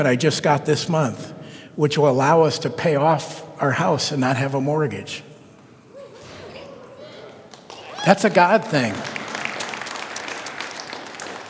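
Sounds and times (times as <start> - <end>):
speech: 0.0 - 5.3, 8.0 - 9.2
crowd applauding: 7.3 - 11.4.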